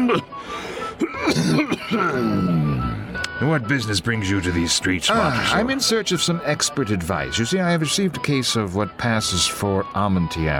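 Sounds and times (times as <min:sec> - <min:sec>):
person coughing harshly: 0:00.0 - 0:00.3, 0:01.0 - 0:02.5
rasping throat clearing: 0:00.0 - 0:00.3, 0:01.0 - 0:03.1
speech: 0:00.1 - 0:00.7, 0:01.3 - 0:02.7, 0:03.4 - 0:10.5.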